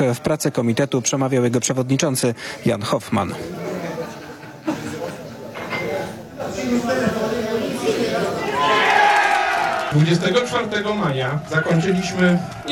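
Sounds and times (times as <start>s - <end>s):
speech: 0.1s - 3.8s, 9.9s - 12.6s
laughter: 3.3s - 10.8s
crowd of several dozen people cheering: 6.5s - 12.6s
many voices shouting together: 7.7s - 10.5s
crowd of several dozen people clapping: 8.3s - 12.6s.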